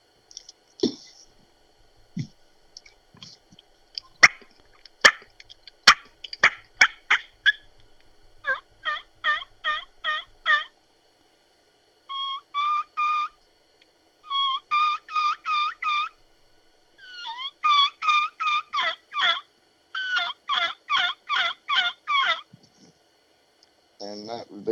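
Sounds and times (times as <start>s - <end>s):
three-reed ghost cut mouth-blown turkey call kee-kee whistles: 3.9s - 10.8s, 12.1s - 13.4s, 14.2s - 22.5s.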